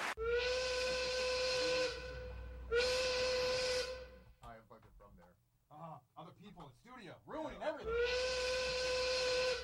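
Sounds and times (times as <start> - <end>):
steam train whistle: 0.2 - 4.3, 7.9 - 9.6.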